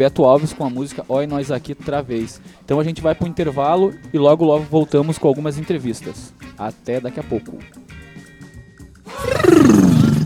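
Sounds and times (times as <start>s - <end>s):
speech: 0.0s - 7.8s
howler monkey roaring: 9.1s - 10.2s.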